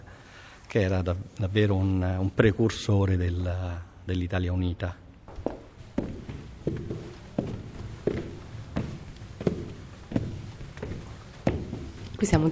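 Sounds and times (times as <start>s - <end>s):
speech: 0.7s - 5.0s, 12.2s - 12.5s
footsteps climbing a staircase inside a historic villa in Rome: 5.2s - 12.5s.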